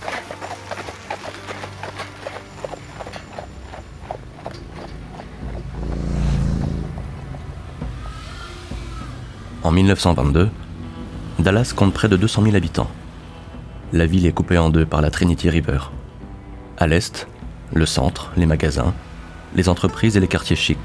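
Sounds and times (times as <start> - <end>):
rolling cart rumble: 0.0 - 8.5
horse's hooves clip-clopping at a walking pace pulling a cart: 0.0 - 9.5
low rumbling swell: 5.5 - 9.6
speech: 9.7 - 10.6, 11.4 - 13.0, 13.9 - 16.0, 16.8 - 20.8.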